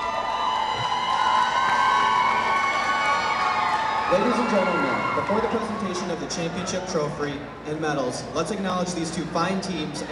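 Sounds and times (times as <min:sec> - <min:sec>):
large basketball crowd roaring and cheering after the final buzzer: 0:00.0 - 0:07.4
speech: 0:04.1 - 0:10.1.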